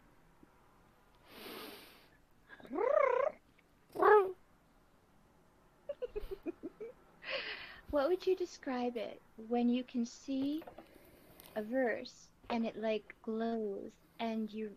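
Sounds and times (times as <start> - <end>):
cat hissing in long grass: 1.3 - 4.4
cat chattering chirps in long grass: 2.6 - 3.4
speech: 7.9 - 10.8, 11.6 - 14.7.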